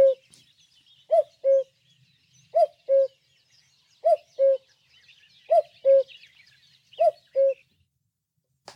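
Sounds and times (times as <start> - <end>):
common cuckoo calling: 0.0 - 0.4, 1.1 - 1.8, 2.4 - 3.2, 4.0 - 4.8, 5.5 - 7.7
birds chirping: 0.0 - 8.0.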